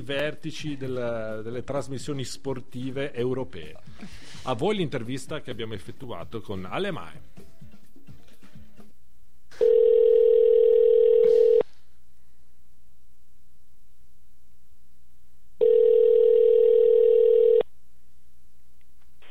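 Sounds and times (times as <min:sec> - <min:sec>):
speech: 0:00.0 - 0:07.4
telephone ringback tone heard through the handset: 0:09.6 - 0:11.6, 0:15.6 - 0:17.6.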